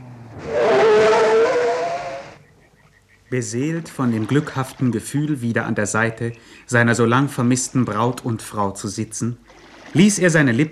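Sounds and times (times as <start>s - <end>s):
car pulling up and stopping by a lakeshore: 0.0s - 2.9s
speech: 3.3s - 10.7s.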